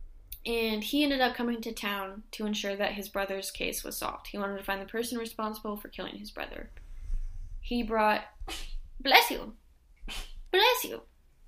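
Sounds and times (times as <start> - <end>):
speech: 0.4 - 6.8, 7.7 - 11.1
person sneezing: 8.4 - 8.8, 10.0 - 10.4.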